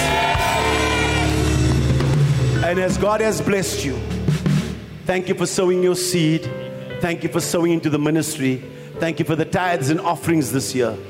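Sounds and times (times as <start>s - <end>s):
audience shouting together in one loud burst: 0.0s - 1.8s
speech: 2.7s - 4.2s, 5.1s - 11.0s.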